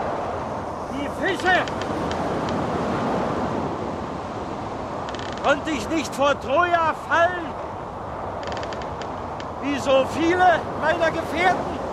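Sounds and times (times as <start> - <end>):
blustery wind: 0.0 - 11.9
ocean surf: 0.0 - 11.9
speech: 1.0 - 2.0, 5.4 - 7.6, 9.6 - 11.8
faint brief clicks: 1.4 - 2.6, 8.4 - 9.6.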